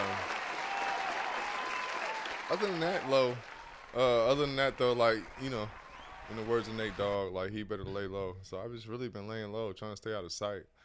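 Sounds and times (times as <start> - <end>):
crowd applause: 0.0 - 7.2
speech: 2.5 - 10.7.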